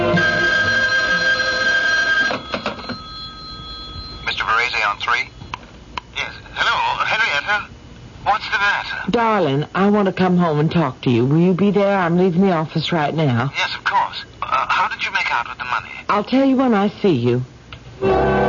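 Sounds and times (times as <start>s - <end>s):
telephone ringing with an electronic trill: 0.2s - 5.5s
voice speaking down a telephone line: 4.2s - 5.4s, 6.1s - 7.7s, 8.2s - 10.1s, 12.3s - 17.4s
speech: 9.2s - 13.6s, 16.1s - 18.4s.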